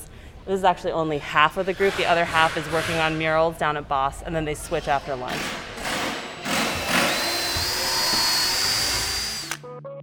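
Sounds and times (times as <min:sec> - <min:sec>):
speech: 0:00.5 - 0:05.6
power drill whirring while assembling benches and a bookshelf: 0:05.3 - 0:09.6.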